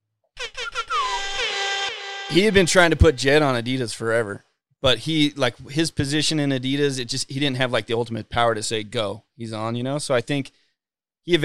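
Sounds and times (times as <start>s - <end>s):
loud air horn blasts: 0.9s - 2.9s
speech: 2.3s - 10.6s, 11.2s - 11.4s.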